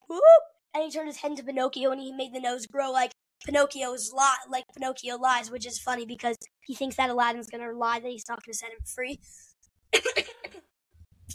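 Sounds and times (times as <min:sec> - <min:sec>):
speech: 0:00.1 - 0:10.3
person coughing: 0:10.0 - 0:10.7.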